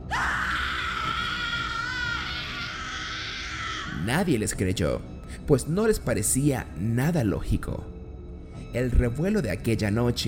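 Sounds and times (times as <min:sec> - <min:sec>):
woman screaming in terror: 0:00.0 - 0:04.0
speech: 0:04.0 - 0:07.9, 0:08.7 - 0:10.2.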